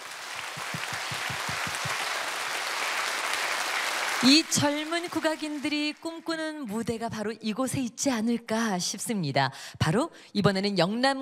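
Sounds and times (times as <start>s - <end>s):
louder rhythmic claps: 0.0s - 6.1s
hall full of people applauding warmly: 0.0s - 6.2s
speech: 4.2s - 11.1s.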